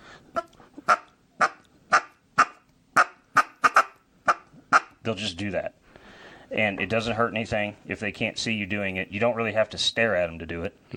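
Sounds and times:
duck call clucking like a feeding duck: 0.3 - 5.0
speech: 5.0 - 5.8, 6.5 - 10.9.

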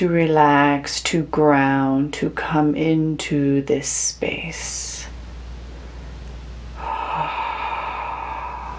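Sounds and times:
speech: 0.0 - 4.9
low constant hum: 0.0 - 8.7
deep breathing: 5.6 - 8.7.

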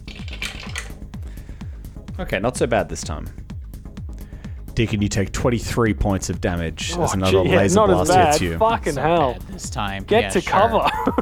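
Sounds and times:
handful of dice rattling across a surface: 0.0 - 1.0
speech: 2.2 - 3.4, 4.8 - 11.1
laughter: 6.8 - 11.1.

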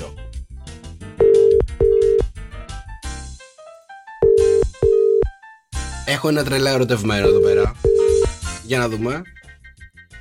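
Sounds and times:
outgoing phone call ringback tones: 1.2 - 2.3, 4.2 - 5.4, 7.2 - 8.3
speech: 6.1 - 7.9, 8.7 - 9.4.

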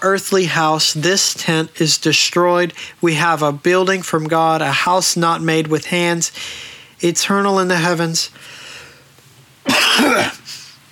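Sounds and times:
speech: 0.0 - 8.6, 10.0 - 10.4
harsh cough: 9.7 - 10.7
rasping throat clearing: 9.7 - 10.7.

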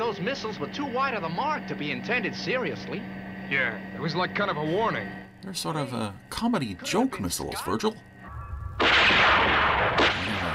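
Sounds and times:
speech: 0.1 - 8.1
gunfire bursts in a gun battle: 8.8 - 10.5.

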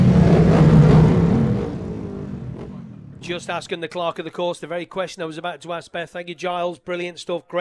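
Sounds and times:
racing machine engines pulling away on a warm-up lap: 0.0 - 3.7
speech: 3.3 - 7.6.

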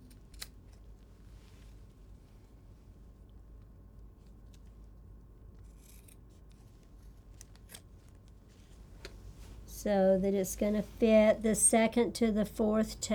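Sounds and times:
low steady hum: 0.0 - 13.1
scissors trimming the edges of moleskin: 5.7 - 6.2
speech: 9.8 - 13.1.

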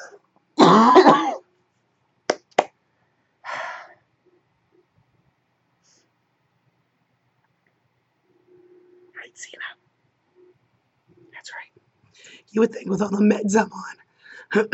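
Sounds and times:
person coughing: 0.0 - 1.4
speech: 9.4 - 9.9, 11.5 - 14.7.

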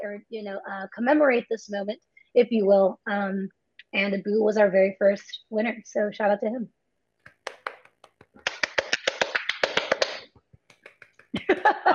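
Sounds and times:
speech: 0.0 - 6.8, 11.4 - 11.9
one person clapping hands: 7.3 - 11.7
laughter: 11.4 - 11.9.

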